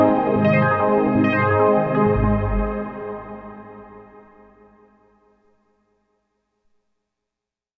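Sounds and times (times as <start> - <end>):
cloud pad on a Roland Juno 6 synthesizer: 0.1 - 4.9.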